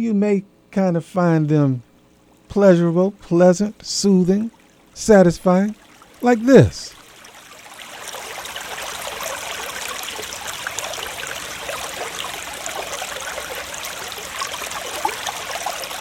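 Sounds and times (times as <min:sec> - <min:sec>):
speech: 0:00.0 - 0:01.9, 0:02.5 - 0:07.0
water trickling and pouring: 0:04.3 - 0:15.9.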